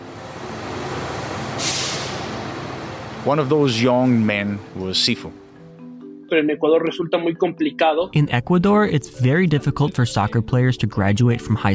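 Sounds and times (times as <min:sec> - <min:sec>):
bus idling as it parks outside a football club in Ecuador: 0:00.0 - 0:05.6
bus air brake hiss: 0:01.6 - 0:02.4
speech: 0:03.2 - 0:05.4, 0:06.3 - 0:11.7.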